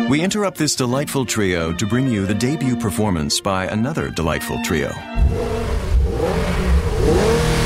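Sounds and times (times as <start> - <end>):
speech: 0.1 - 5.8
turbocharged engine of a 2016 Infiniti Q50 sports sedan revving: 5.1 - 7.6.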